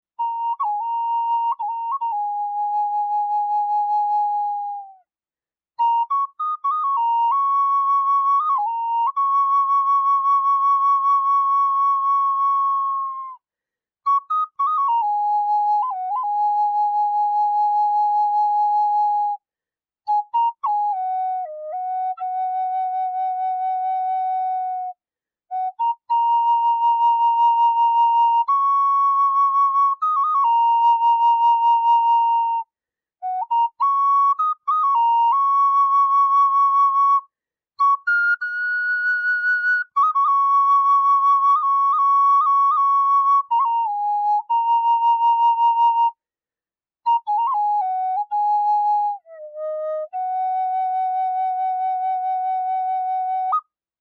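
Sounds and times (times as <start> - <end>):
Native American flute in high Eb playing: 0.2 - 5.0, 5.8 - 13.4, 14.1 - 19.4, 20.1 - 46.2, 47.1 - 53.7.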